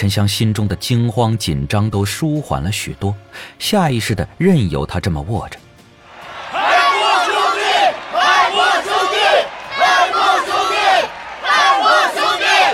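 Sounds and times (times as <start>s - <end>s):
speech: 0.0s - 5.6s
large crowd cheering and battle cries: 6.0s - 12.7s.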